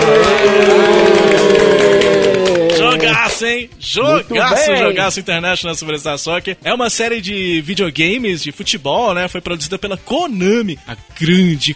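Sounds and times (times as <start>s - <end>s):
loud crowd applause and cheering: 0.0s - 5.1s
speech: 0.1s - 0.8s, 3.5s - 11.7s.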